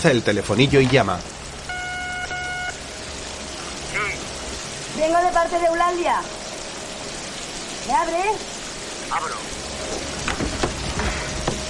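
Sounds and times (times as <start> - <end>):
speech: 0.0 - 1.4, 5.0 - 6.4, 7.9 - 8.5, 9.1 - 10.2
rain drips and splashes: 0.0 - 11.6
steady rain: 0.0 - 11.6.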